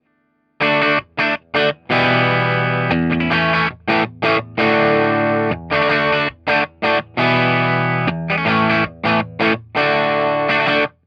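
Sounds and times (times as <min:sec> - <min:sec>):
Tele electric guitar through Orange Standard amplifier: 0:00.6 - 0:11.0.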